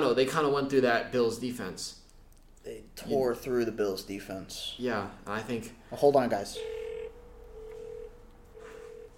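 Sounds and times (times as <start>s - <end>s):
speech: 0.0s - 2.0s, 2.6s - 6.8s
telephone ringing: 6.6s - 9.1s.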